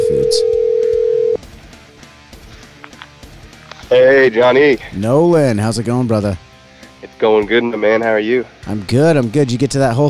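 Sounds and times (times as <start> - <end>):
steady telephone tone as a call is placed: 0.0 - 1.4
speech: 3.9 - 10.0.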